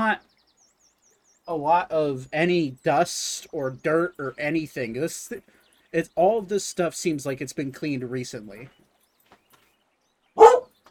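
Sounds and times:
speech: 0.0 - 0.3, 1.5 - 8.8
dog barking: 10.4 - 10.7.

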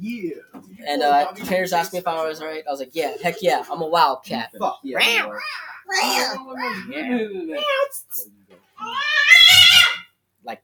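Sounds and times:
speech: 0.0 - 10.6
cat meowing in a studio: 8.8 - 10.1.

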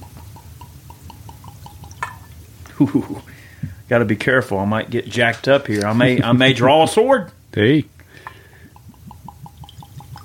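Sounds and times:
rum pouring from a bottle into a glass: 0.0 - 2.4, 8.3 - 10.2
speech: 2.8 - 7.9.

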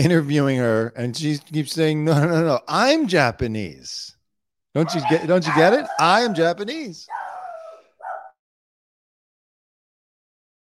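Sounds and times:
speech: 0.0 - 4.2, 4.8 - 7.2
dog barking in a newsroom: 4.8 - 8.4.

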